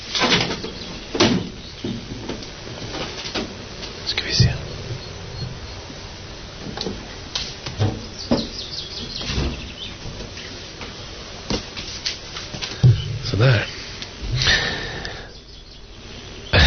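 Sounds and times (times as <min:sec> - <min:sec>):
quiet rattle: 0:00.0 - 0:11.0, 0:11.6 - 0:16.0
steady hiss: 0:00.0 - 0:16.6
bird chirps outdoors: 0:04.1 - 0:06.2, 0:08.0 - 0:10.6, 0:15.3 - 0:16.6
window sliding open with scraping and knocking: 0:04.2 - 0:08.5.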